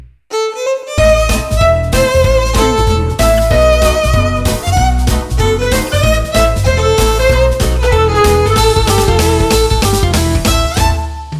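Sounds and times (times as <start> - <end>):
gypsy jazz fiddle: 0.3 - 11.3.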